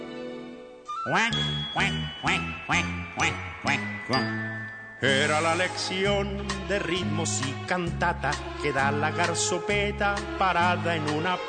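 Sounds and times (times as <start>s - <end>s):
sustained musical tone: 0.9s - 7.2s
speech: 1.0s - 11.4s
duck-like quacks: 1.1s - 3.9s.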